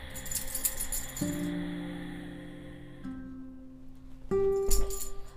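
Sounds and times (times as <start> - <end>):
dog moving about with collar tags jingling: 0.2 - 1.5, 4.5 - 5.3
speech: 1.2 - 1.6.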